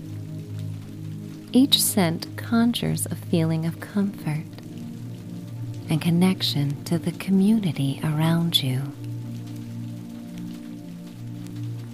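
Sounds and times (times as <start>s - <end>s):
raindrops splattering onto puddles: 0.0s - 11.9s
speech: 1.5s - 4.5s, 5.9s - 9.0s.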